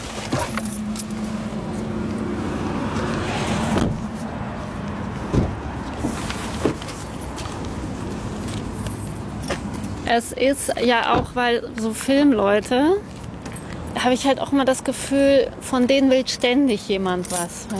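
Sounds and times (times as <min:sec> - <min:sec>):
car engine or road hum: 0:00.0 - 0:11.6
keys jingling: 0:00.3 - 0:01.8, 0:07.2 - 0:11.1, 0:16.6 - 0:17.7
car door thud: 0:03.7 - 0:04.1, 0:05.3 - 0:05.6
speech: 0:10.1 - 0:13.2, 0:14.0 - 0:17.7.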